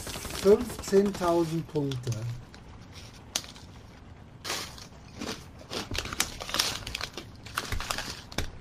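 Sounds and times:
speech: 0.4s - 2.4s
chips bag crinkling: 4.5s - 8.6s.

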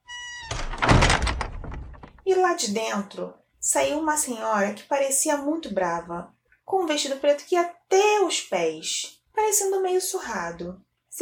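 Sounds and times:
door creaking: 0.0s - 2.3s
rattling clattering noise: 0.4s - 2.3s
speech: 2.3s - 11.2s.

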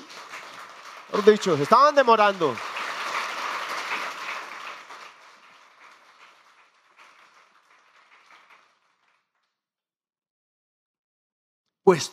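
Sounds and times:
congregation applauding: 0.0s - 9.5s
speech: 1.1s - 2.7s, 11.9s - 12.1s.

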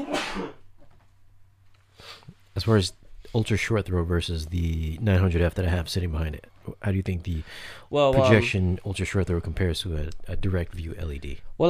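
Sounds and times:
loud sneeze: 0.0s - 0.6s
speech: 2.6s - 11.6s.

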